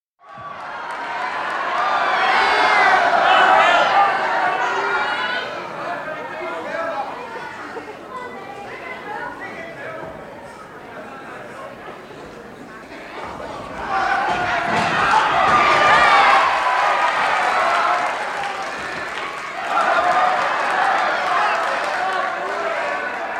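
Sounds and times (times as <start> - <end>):
animated crowd reaction: 0.2 - 8.4, 13.0 - 23.3.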